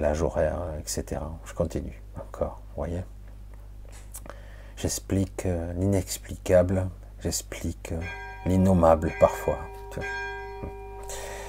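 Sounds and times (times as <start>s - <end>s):
speech: 0.0s - 3.2s, 4.8s - 10.8s
church bell ringing: 8.0s - 11.4s.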